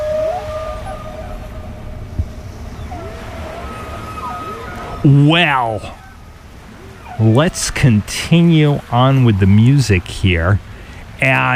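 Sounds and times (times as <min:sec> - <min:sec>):
low underwater rumble: 0:00.0 - 0:05.1
humpback whale calls: 0:00.0 - 0:11.5
speech: 0:05.0 - 0:06.0, 0:07.2 - 0:11.5.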